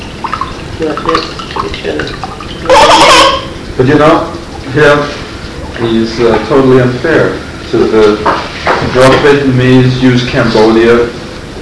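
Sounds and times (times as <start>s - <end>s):
liquid pouring from a can punctured with two holes: 0.0s - 3.6s
speech: 0.8s - 5.2s, 5.8s - 11.6s.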